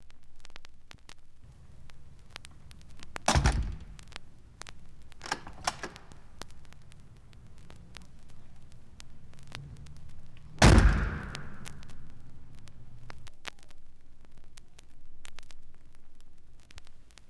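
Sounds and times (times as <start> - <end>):
door closing: 2.5 - 4.2, 5.2 - 6.4, 9.6 - 12.5
door slamming: 3.2 - 4.1, 5.2 - 6.2, 10.5 - 11.8.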